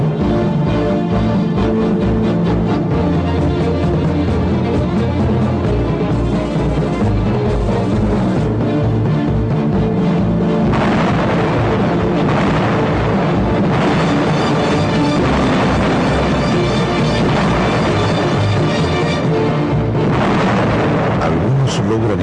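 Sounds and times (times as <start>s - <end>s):
heavy rumbling background: 0.0s - 22.2s
firing squad gunfire bursts at garbage dumps: 10.7s - 21.7s.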